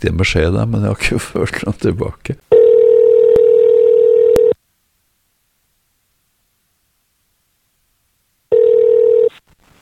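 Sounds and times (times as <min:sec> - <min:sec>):
speech: 0:00.0 - 0:02.5
buzzing telephone ringback tone: 0:02.5 - 0:04.6, 0:08.5 - 0:09.3.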